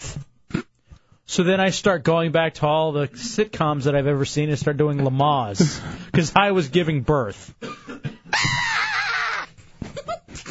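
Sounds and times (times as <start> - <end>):
speech: 1.3 - 7.8
loud harsh rasping scream: 8.3 - 9.5.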